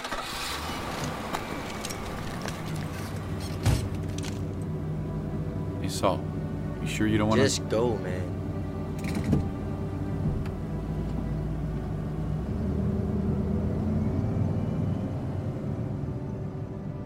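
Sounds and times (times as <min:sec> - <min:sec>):
car engine rumble as the car pulls away through a gate: 0:00.0 - 0:17.0
car door shutting: 0:00.1 - 0:04.5, 0:09.0 - 0:10.6
faint mechanical creaks: 0:00.6 - 0:04.6
speech: 0:06.0 - 0:08.4.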